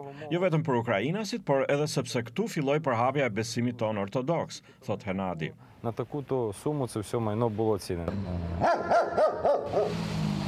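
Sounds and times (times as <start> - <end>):
speech: 0.0 - 10.4
dogs barking at a bomb-sniffing dog training facility: 8.6 - 10.0.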